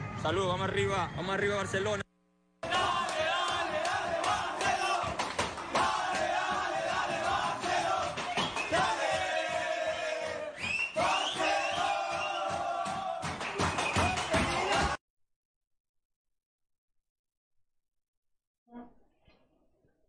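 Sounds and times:
speech: 0.2s - 2.0s
large crowd of football fans chanting and cheering in celebration: 2.6s - 15.0s.

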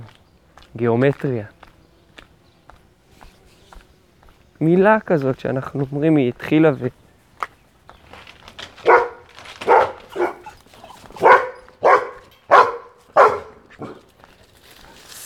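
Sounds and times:
speech: 0.7s - 1.6s, 4.6s - 7.0s
dogs barking behind a fence: 8.6s - 14.3s
dog yips and whimpers: 8.9s - 14.0s.

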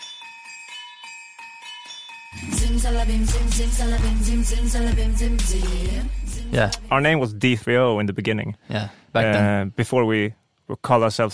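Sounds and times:
bright repeating bell melody in a song intro: 0.0s - 7.2s
loud thumping bass beat: 2.4s - 7.2s
speech: 2.4s - 11.3s.

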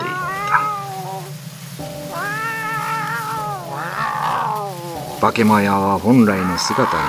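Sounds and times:
huge cat yowling as it runs off over a hill: 0.0s - 5.6s, 6.2s - 7.0s
steady low rumble: 0.0s - 7.0s
speech: 5.2s - 7.0s.

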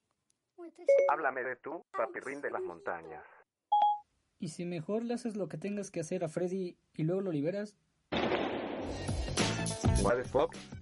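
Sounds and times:
speech: 0.7s - 3.4s, 4.4s - 7.8s, 9.7s - 10.8s
dense noisy mix of voices: 0.9s - 3.4s
gunshots: 8.1s - 9.1s.

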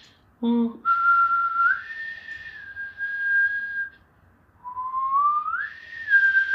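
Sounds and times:
person whistling an imitation of a creature's song: 0.9s - 4.0s, 4.6s - 6.5s.

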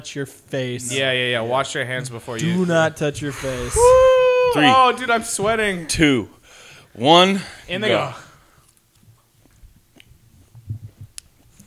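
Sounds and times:
speech: 0.0s - 6.4s, 7.0s - 8.2s
biting and chewing a hot pepper: 8.6s - 11.6s.

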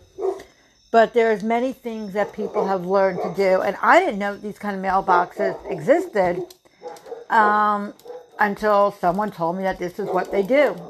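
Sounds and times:
faint dog bark: 0.1s - 0.5s, 2.3s - 3.4s, 5.4s - 8.5s, 10.0s - 10.8s
speech: 0.9s - 6.6s, 7.3s - 10.8s.

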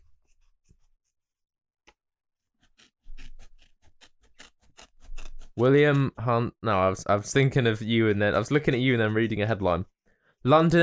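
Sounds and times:
sharp scissors cutting: 2.6s - 6.0s
speech: 5.6s - 10.8s.

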